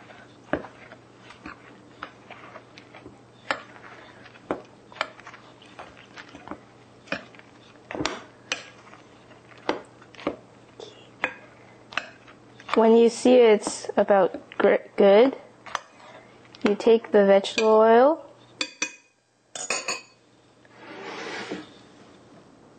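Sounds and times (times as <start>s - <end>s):
soft scraping while stirring dry ingredients in a bowl: 0.0s - 12.9s, 15.6s - 16.5s, 20.7s - 22.0s
speech: 12.8s - 15.4s, 16.7s - 18.2s.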